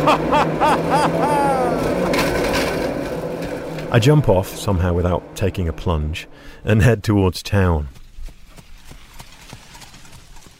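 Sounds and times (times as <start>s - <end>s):
laughter: 0.0s - 2.1s
horse-drawn cart rumbling: 0.0s - 10.5s
speech: 3.9s - 8.0s
hooves of a horse pulling a cart clip-clopping: 7.4s - 10.5s.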